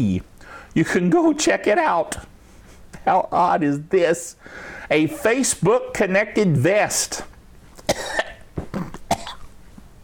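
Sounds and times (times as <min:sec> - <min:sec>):
speech: 0:00.0 - 0:02.3, 0:03.0 - 0:07.3
person coughing dry harsh coughs: 0:07.9 - 0:09.5.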